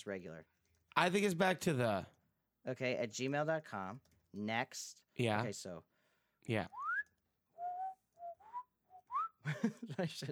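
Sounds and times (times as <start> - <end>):
speech: 0.0 - 6.8, 9.4 - 10.2
person whistling a short lilting tune: 6.8 - 9.4.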